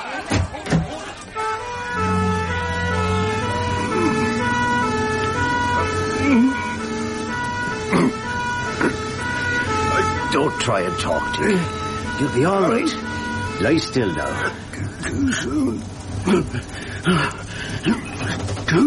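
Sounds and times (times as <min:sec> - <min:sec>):
vehicle rumble: 0:00.0 - 0:18.8
ambulance siren: 0:01.0 - 0:18.8
speech: 0:10.6 - 0:13.0, 0:13.6 - 0:18.8.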